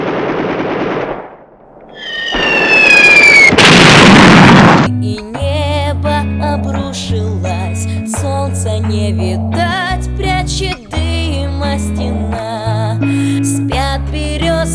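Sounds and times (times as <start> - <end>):
artillery fire: 0.0 - 1.5, 2.3 - 4.9
loud explosions: 0.0 - 4.9
high whistling streak overhead: 2.0 - 3.7
music with a low steady bass line: 4.9 - 14.7.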